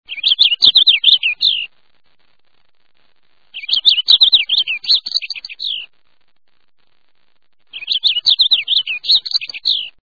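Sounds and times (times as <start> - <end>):
purple finch: 0.1 - 1.7, 3.5 - 5.9, 7.7 - 10.0.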